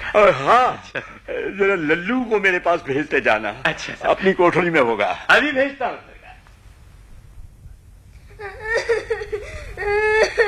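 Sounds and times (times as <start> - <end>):
speech: 0.2 - 6.1
boy whimpering and sobbing after being kicked: 8.3 - 10.4.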